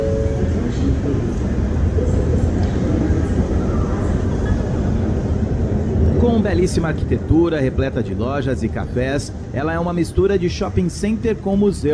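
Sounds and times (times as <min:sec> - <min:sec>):
faint murmuring voices in a railway station: 0:00.0 - 0:06.2
train rumbling at Union Station railway station in Washington D.C.: 0:00.0 - 0:11.9
speech: 0:06.4 - 0:11.9.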